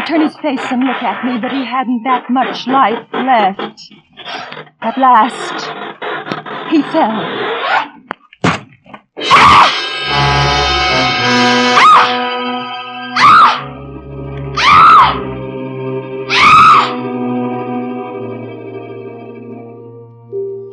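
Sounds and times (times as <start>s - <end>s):
speech: 0.0s - 6.0s, 6.7s - 7.9s
heavy processed drone: 0.0s - 7.3s, 9.2s - 20.7s
sharp thumps: 0.0s - 12.2s
woman screaming in loud piercing bursts: 11.7s - 12.2s, 13.1s - 13.7s, 14.6s - 15.2s, 16.3s - 17.0s.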